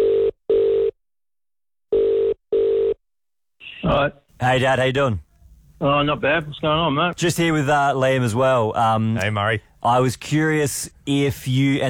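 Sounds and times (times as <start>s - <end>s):
phone ringing tone: 1.9s - 3.0s
speech: 3.9s - 11.8s.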